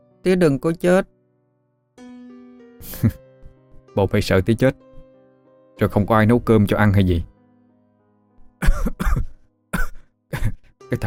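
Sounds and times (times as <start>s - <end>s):
speech: 0.2s - 1.1s, 2.8s - 3.2s, 4.0s - 4.9s, 5.8s - 7.3s
man coughing in a long fit: 8.6s - 10.7s.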